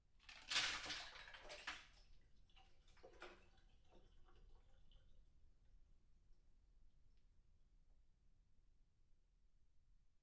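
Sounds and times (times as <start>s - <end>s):
glass of ice poured into a sink: 0.3s - 2.0s.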